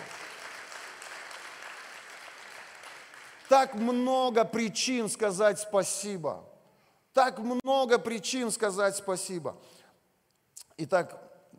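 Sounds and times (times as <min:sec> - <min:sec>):
large gathering of people applauding in a room: 0:00.0 - 0:04.1
speech: 0:03.5 - 0:06.5, 0:07.2 - 0:09.8, 0:10.8 - 0:11.3.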